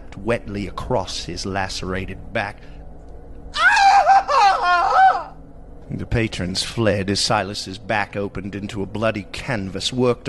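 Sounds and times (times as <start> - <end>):
speech: 0.2 - 2.8, 5.9 - 10.2
man screaming in agony: 3.6 - 5.4.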